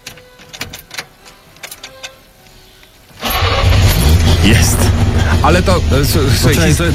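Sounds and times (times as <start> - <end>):
FSO Syrena car starter cranking: 3.2 - 5.9
FSO Syrena car engine roaring into a steady run: 3.3 - 6.9
speech: 4.4 - 6.9.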